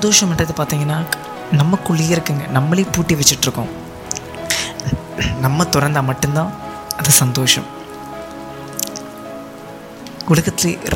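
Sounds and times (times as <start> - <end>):
speech: 0.0 - 3.8, 4.8 - 7.8, 10.3 - 10.9
rain pattering on a hard surface: 0.0 - 10.9
sharp drips: 2.8 - 10.9.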